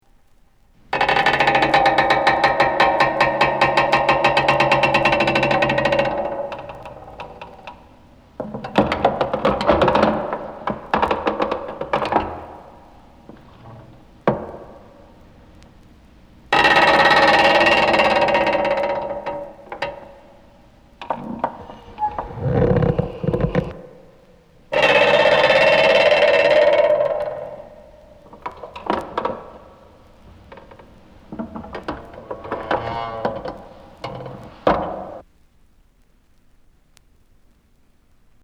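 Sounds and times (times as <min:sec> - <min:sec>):
creaking: 0:00.7 - 0:35.3.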